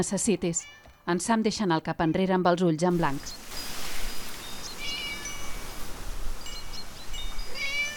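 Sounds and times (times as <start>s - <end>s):
speech: 0.0s - 3.7s
steady hiss: 2.9s - 7.9s
cat meowing: 4.8s - 5.4s, 7.5s - 7.9s.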